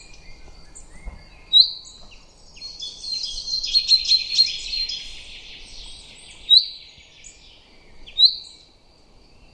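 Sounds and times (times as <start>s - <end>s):
common chaffinch song: 0.0s - 9.5s.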